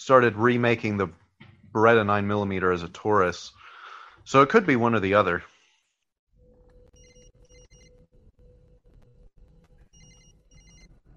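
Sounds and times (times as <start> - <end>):
speech: 0.0 - 5.5
telephone ringing: 6.7 - 8.0, 9.9 - 11.1.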